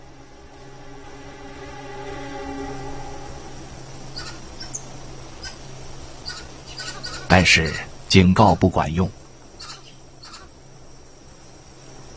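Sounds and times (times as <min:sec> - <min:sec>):
noisy forest backdrop: 0:00.0 - 0:12.1
monkey troop alarm calls at a vulture: 0:04.2 - 0:07.8, 0:09.5 - 0:10.5
speech: 0:07.3 - 0:09.2.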